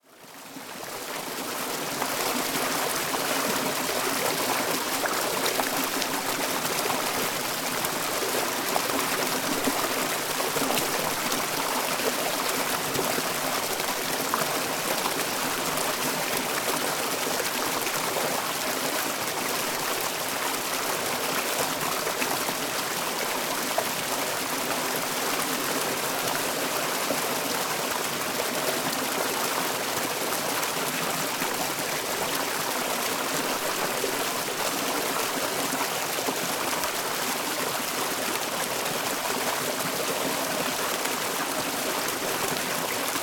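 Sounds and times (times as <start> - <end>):
turbulent water flow: 0.2 - 43.2.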